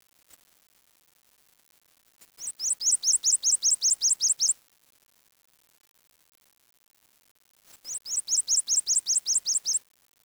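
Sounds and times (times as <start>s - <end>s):
bird chirping: 2.4s - 4.6s, 7.9s - 9.8s.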